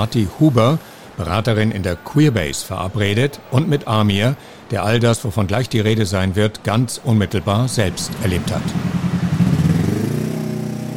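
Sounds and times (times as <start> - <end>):
speech: 0.0 - 8.9
steady road noise of busy city street traffic: 0.0 - 10.9
loud vehicle engine rumbling past: 7.7 - 10.9.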